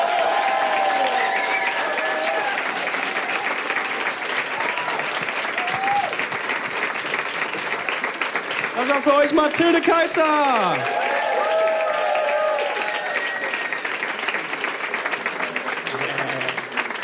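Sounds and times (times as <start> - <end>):
audience applause: 0.0 - 17.0
audience cheers: 0.0 - 17.0
speech: 8.9 - 11.1
faint audience whistles: 13.0 - 13.8.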